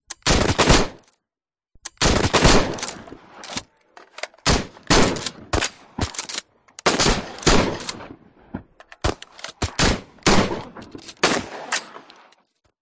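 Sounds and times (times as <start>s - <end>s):
guns shooting: 0.2s - 1.0s, 2.0s - 3.6s, 4.4s - 8.2s, 9.0s - 12.1s
gun reloading: 1.8s - 8.1s, 8.8s - 12.6s.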